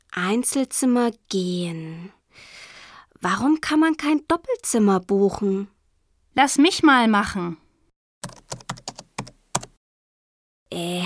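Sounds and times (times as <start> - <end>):
speech: 0.2 - 2.5, 3.2 - 5.7, 6.4 - 7.6, 8.2 - 8.4, 10.7 - 11.0
typing an email on a computer keyboard: 8.2 - 9.8.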